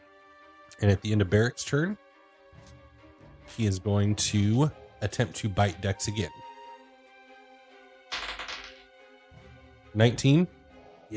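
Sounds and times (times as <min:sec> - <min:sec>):
speech: 0:00.8 - 0:02.0, 0:03.5 - 0:06.5, 0:10.0 - 0:11.1
handful of dice rolled across a hard surface: 0:08.1 - 0:08.9.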